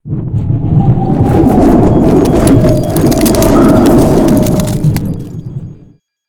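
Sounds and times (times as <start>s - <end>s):
snow squall: 1.0s - 5.4s.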